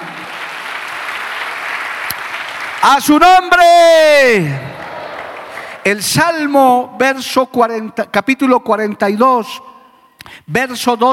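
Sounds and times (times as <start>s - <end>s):
audience applauding: 0.0s - 6.0s
speech: 2.8s - 4.7s, 5.8s - 9.7s, 10.3s - 11.1s.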